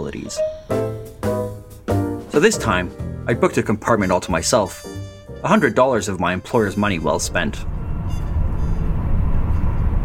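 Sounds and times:
speech: 0:00.1 - 0:00.9, 0:02.4 - 0:07.7
night train shuddering and thumping on the rails: 0:07.2 - 0:10.0.

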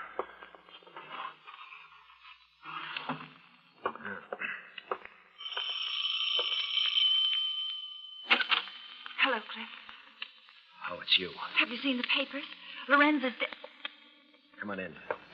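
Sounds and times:
doorbell ringing with shrill sustained tone: 0:05.4 - 0:10.0
speech: 0:11.1 - 0:13.6, 0:14.6 - 0:15.2.

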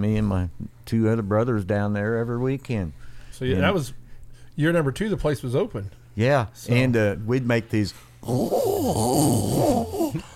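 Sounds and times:
speech: 0:00.0 - 0:04.0, 0:04.6 - 0:10.3
person's voice imitating a sprint car engine revving: 0:08.2 - 0:10.3.

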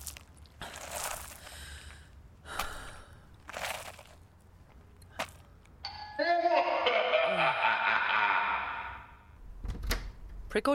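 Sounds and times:
breathy gasps and sighs: 0:00.6 - 0:03.9
eerie doorbell chime with wavering gliding tones: 0:05.8 - 0:07.4
laughter: 0:06.2 - 0:09.2
speech: 0:10.6 - 0:10.7.

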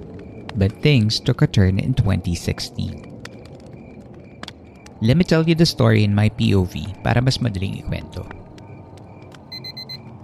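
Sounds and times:
low steady rumble: 0:00.0 - 0:10.2
speech: 0:00.6 - 0:03.1, 0:05.0 - 0:08.4
alarm clock high electronic beeps: 0:09.5 - 0:10.1.

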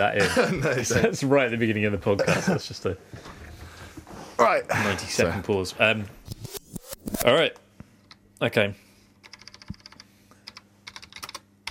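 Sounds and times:
speech: 0:00.0 - 0:03.4, 0:04.4 - 0:07.6, 0:08.4 - 0:08.8
typing on a computer keyboard: 0:09.2 - 0:11.6.

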